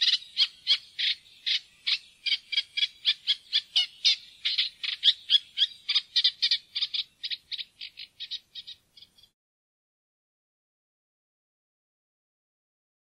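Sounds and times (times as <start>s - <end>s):
Eurasian reed warbler song: 0.0s - 9.4s.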